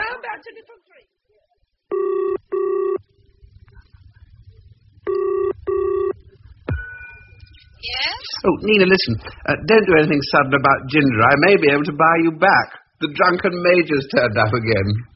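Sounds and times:
speech: 0.4 - 1.2, 7.8 - 15.1
telephone ringing while someone places a call: 1.9 - 3.0, 5.1 - 6.2.

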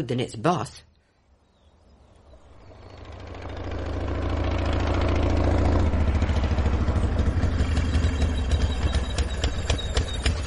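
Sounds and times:
speech: 0.0 - 0.9
quad bike engine running: 2.6 - 10.4.

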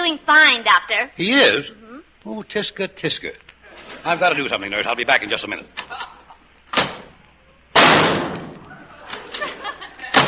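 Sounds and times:
speech: 0.1 - 3.4, 4.0 - 6.1
laughter: 5.8 - 6.5, 8.6 - 10.2
gunshot sound effect: 7.8 - 8.6.

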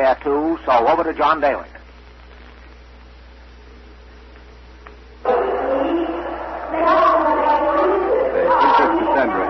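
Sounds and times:
speech: 0.0 - 1.8
large crowd of citizens carrying torches murmuring in the main market square: 5.2 - 9.4.

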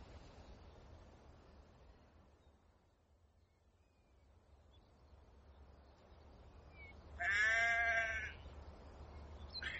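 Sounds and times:
steady low rumble of wind in open air: 0.0 - 9.7
sheep bleating in a field: 7.2 - 8.4.

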